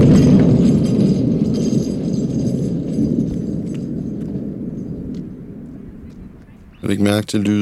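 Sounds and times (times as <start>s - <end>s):
horse hooves clattering on cobblestones: 0.0s - 5.3s
speech: 6.9s - 7.5s.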